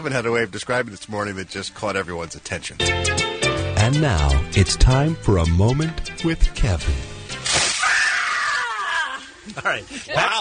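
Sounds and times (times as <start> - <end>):
speech: 0.0 - 7.1, 9.5 - 10.3
recorded blast of shrill high-pitched screaming: 7.7 - 9.2.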